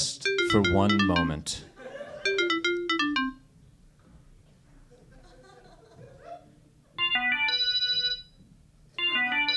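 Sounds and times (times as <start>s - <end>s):
ominous phone ringtone with descending electronic melody: 0.0s - 1.5s, 2.2s - 3.5s, 7.0s - 8.3s, 9.0s - 9.5s
speech: 0.5s - 1.7s
laughter: 1.8s - 2.3s, 4.9s - 6.6s.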